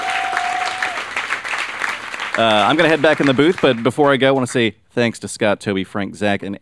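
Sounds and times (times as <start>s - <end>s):
applause from a live studio audience: 0.0s - 4.6s
speech: 2.4s - 6.5s.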